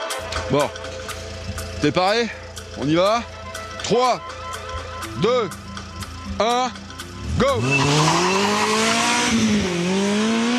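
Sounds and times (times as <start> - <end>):
car engine roaring as the car launches hard from a standing start: 0.0 - 10.5
speech: 0.4 - 0.8, 1.8 - 4.4, 5.0 - 5.6, 6.3 - 6.8, 7.4 - 9.0
tire squeal: 7.2 - 9.7.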